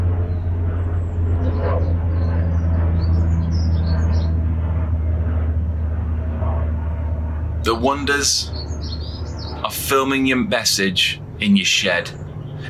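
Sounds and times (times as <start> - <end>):
helicopter droning overhead: 0.0 - 12.6
small birds chirping: 0.1 - 4.4, 7.7 - 12.6
speech: 7.7 - 8.9, 9.7 - 12.2.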